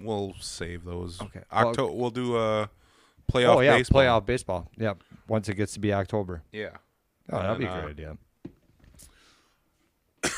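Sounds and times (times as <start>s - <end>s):
speech: 0.0s - 8.3s
quiet breathy sounds: 2.7s - 3.3s, 9.0s - 9.8s
single harsh loud cough: 10.2s - 10.3s.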